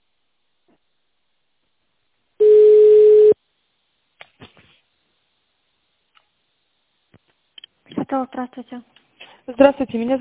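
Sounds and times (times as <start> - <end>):
telephone tone while a call is being connected: 2.4 - 3.4
speech: 8.1 - 10.2.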